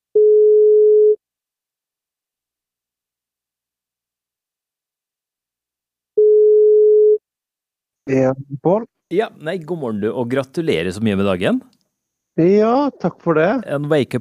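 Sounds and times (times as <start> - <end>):
telephone ringback tone during outgoing call: 0.2 - 1.2, 6.2 - 7.2
speech: 8.1 - 11.8, 12.4 - 14.1.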